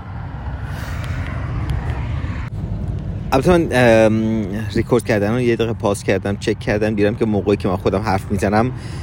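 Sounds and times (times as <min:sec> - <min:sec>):
vehicle whoosh: 0:00.0 - 0:05.2
cars passing on a highway: 0:00.0 - 0:09.0
speech: 0:03.3 - 0:09.0.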